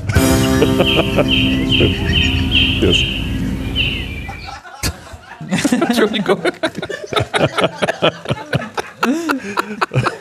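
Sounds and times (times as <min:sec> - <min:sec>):
laughter: 0:00.0 - 0:03.2, 0:04.2 - 0:10.2
birds chirping in a played recording: 0:00.0 - 0:04.8
speech: 0:00.7 - 0:03.2, 0:06.0 - 0:08.5.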